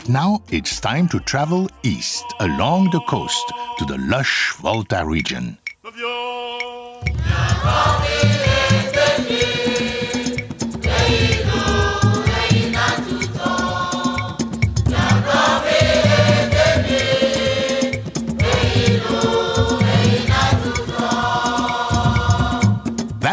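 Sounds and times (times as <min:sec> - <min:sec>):
speech: 0:00.0 - 0:05.6
layered voices singing in harmony in Ewe Bobobo music: 0:01.8 - 0:04.8, 0:05.8 - 0:23.2
driving percussion with a deep rhythmic low end: 0:06.6 - 0:23.3.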